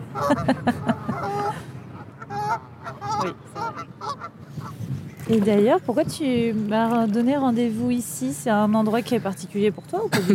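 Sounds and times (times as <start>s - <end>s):
laughter: 0.0s - 1.6s
ducks quacking by the water in Paris: 0.0s - 4.8s
speech: 0.2s - 0.9s, 5.3s - 10.3s.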